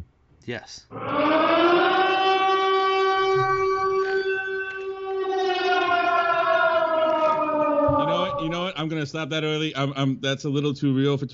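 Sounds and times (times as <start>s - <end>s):
speech: 0.4s - 1.7s, 8.8s - 11.3s
civil defense siren wailing: 0.9s - 8.8s.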